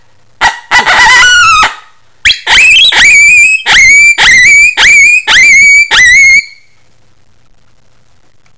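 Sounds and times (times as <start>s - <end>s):
coyote with wavering falling howl and short rising yelping howls: 0.8s - 6.6s.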